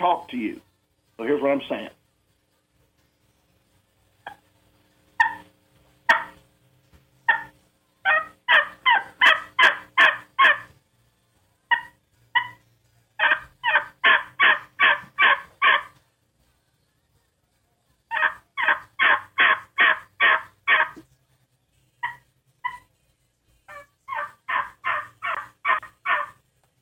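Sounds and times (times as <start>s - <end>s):
speech: 0.0s - 2.0s
rapid raspy turkey mating yelps made on the E250: 5.2s - 5.5s, 6.1s - 6.4s, 7.3s - 10.7s, 11.7s - 12.6s, 13.2s - 16.0s, 18.1s - 21.0s, 22.0s - 22.9s, 23.7s - 26.4s
soft turkey clucks: 5.2s - 5.5s, 6.1s - 6.4s, 8.1s - 10.7s, 13.2s - 16.0s, 18.1s - 21.0s, 23.7s - 26.4s.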